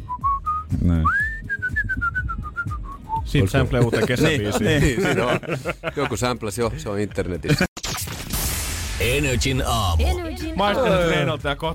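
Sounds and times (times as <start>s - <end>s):
person whistling: 0.0s - 3.3s
speech: 3.3s - 7.7s, 9.1s - 11.7s
laughter: 3.6s - 6.4s.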